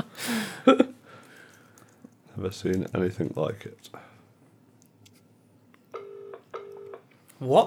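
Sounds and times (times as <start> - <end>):
faint hiss: 0.0 - 7.6
speech: 0.7 - 0.9, 2.4 - 4.1, 7.4 - 7.6
British-style telephone ringing tone on the line: 6.0 - 7.0.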